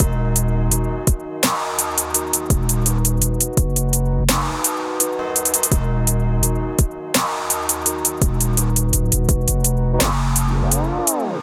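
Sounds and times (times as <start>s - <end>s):
120 bpm MIDI groove: 0.0s - 11.4s.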